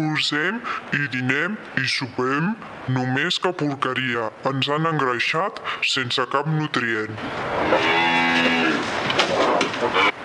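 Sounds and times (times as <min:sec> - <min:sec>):
speech: 0:00.0 - 0:08.6
noisy rustling noise: 0:00.0 - 0:10.2
cow mooing: 0:07.6 - 0:08.9.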